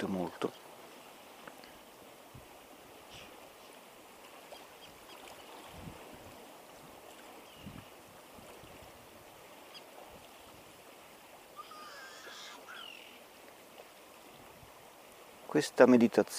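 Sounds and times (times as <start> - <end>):
speech: 0.0 - 0.7, 15.5 - 16.3
soft splashes: 0.0 - 15.7
water lapping against a shoreline: 0.0 - 16.3.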